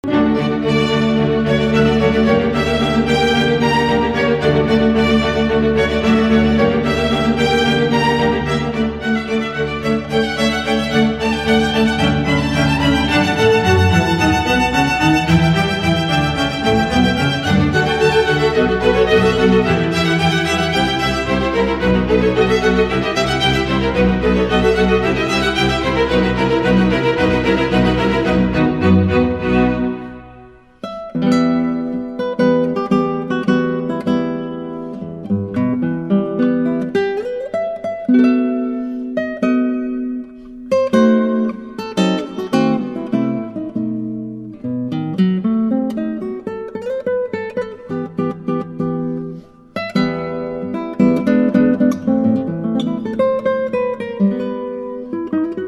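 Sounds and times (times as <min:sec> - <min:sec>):
guitar concerto: 0:00.0 - 0:55.6.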